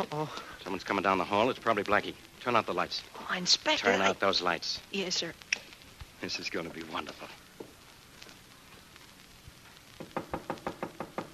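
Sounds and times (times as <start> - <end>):
speech: 0.0 - 5.5, 6.2 - 7.4
knocking on a door: 10.0 - 11.3.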